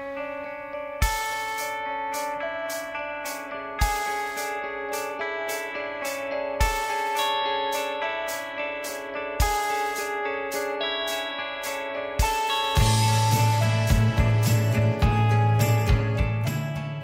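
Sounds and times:
sustained guitar arpeggio: 0:00.0 - 0:17.0
drums: 0:01.0 - 0:17.0
low bass line: 0:12.8 - 0:17.0.

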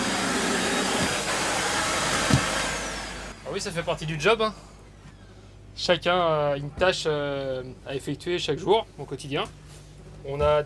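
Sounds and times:
vacuum cleaner running: 0:00.0 - 0:03.4
vacuum cleaner bumping as it moves: 0:00.2 - 0:02.8
speech: 0:03.6 - 0:04.7, 0:05.8 - 0:09.6, 0:10.2 - 0:10.6.

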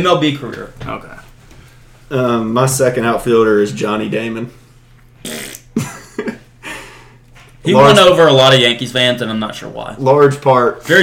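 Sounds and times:
speech: 0:00.0 - 0:01.3, 0:02.1 - 0:04.6, 0:05.2 - 0:05.9, 0:07.7 - 0:11.0
voice imitating a fart with buzzy mouth blasts: 0:05.2 - 0:06.0.

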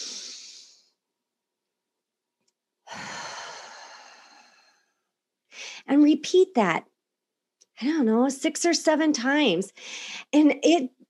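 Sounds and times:
long steady exhale during a deep breathing exercise: 0:00.0 - 0:00.9, 0:02.9 - 0:05.8
person inhaling during a deep breathing exercise: 0:02.8 - 0:05.9, 0:09.8 - 0:10.3
speech: 0:05.9 - 0:06.9, 0:07.8 - 0:11.0.

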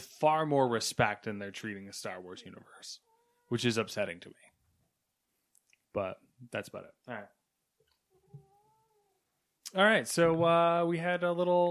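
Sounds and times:
speech: 0:00.2 - 0:04.5, 0:06.0 - 0:07.4, 0:09.7 - 0:11.7
cat meowing with a drawn-out wavering meow: 0:03.0 - 0:03.7, 0:08.1 - 0:09.2.

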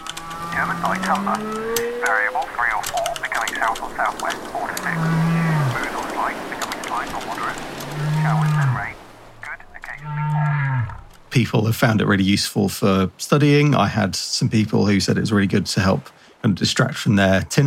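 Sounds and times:
rain-like wash: 0:00.0 - 0:17.6
indistinct murmuring voice: 0:00.5 - 0:11.0
speech: 0:00.6 - 0:09.0, 0:11.4 - 0:17.6
whale moans: 0:04.8 - 0:05.8, 0:07.8 - 0:09.0, 0:10.0 - 0:11.1.

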